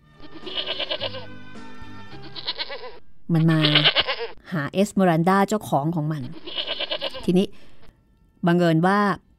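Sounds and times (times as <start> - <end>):
goat bleating: 0.2 - 4.4, 6.2 - 7.9
speech: 3.3 - 6.6, 7.3 - 7.7, 8.4 - 9.2.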